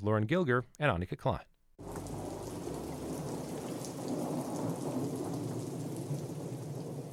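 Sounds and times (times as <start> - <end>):
speech: 0.0 - 2.1
heavy monsoon rain in a desert valley: 1.8 - 7.1
low rumble of monsoon thunder in a desert valley: 1.8 - 7.1.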